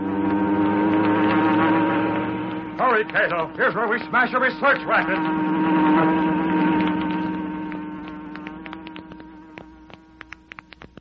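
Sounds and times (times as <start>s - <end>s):
hornet buzzing sound effect: 0.0s - 11.0s
speech: 3.0s - 6.4s.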